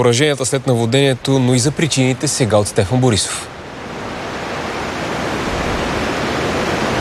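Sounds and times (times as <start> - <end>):
speech: 0.0 - 3.6
water pouring over a dam spillway: 0.0 - 6.9.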